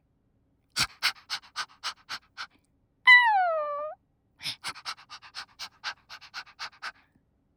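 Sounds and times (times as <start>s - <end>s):
person imitating a puppy whimpering and panting: 0.8s - 2.5s, 4.4s - 6.9s.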